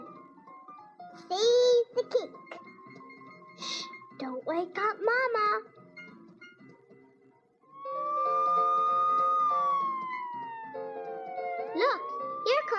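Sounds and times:
speech: 0:01.3 - 0:02.5, 0:04.5 - 0:05.7
fire engine siren wailing: 0:07.7 - 0:12.7.

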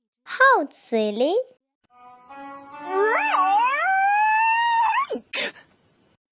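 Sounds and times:
speech: 0:00.3 - 0:01.6
person imitating a goose trying to roar like a lion: 0:02.9 - 0:05.2.

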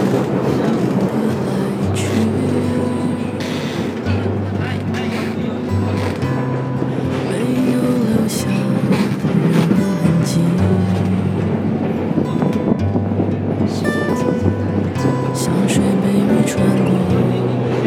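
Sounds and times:
Beijing Line 2 subway train rumbling: 0:00.0 - 0:17.8
faint voices: 0:00.0 - 0:17.8
subway train droning hum: 0:00.0 - 0:17.8.

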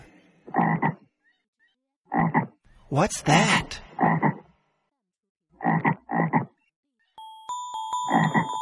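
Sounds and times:
frog croaking: 0:00.4 - 0:01.4, 0:02.1 - 0:02.6, 0:03.9 - 0:04.6, 0:05.5 - 0:06.7, 0:08.1 - 0:08.6
speech: 0:02.9 - 0:03.8.

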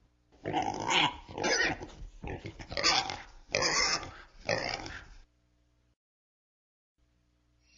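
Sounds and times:
pig oinking and grunting: 0:00.4 - 0:05.2.

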